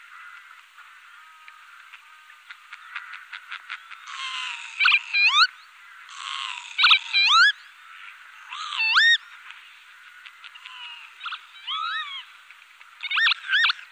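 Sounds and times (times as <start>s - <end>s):
northern lapwing calling: 0.1s - 13.8s.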